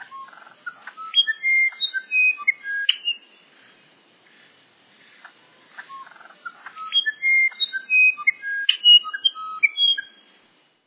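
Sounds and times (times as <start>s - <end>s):
Musician wren song of pure flute-like whistled notes: 0.0s - 3.4s, 5.4s - 10.3s.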